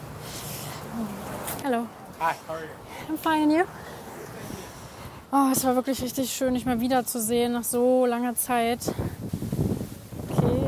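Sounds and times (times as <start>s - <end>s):
speech: 1.7s - 3.9s, 5.3s - 9.2s
gusty wind buffeting microphone: 3.1s - 10.6s.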